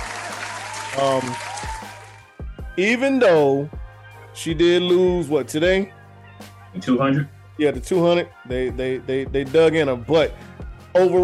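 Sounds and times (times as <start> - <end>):
round of applause: 0.0 - 2.3
vocal whoop: 0.1 - 2.1
speech: 1.0 - 1.5, 2.8 - 3.8, 4.4 - 6.0, 6.8 - 11.2.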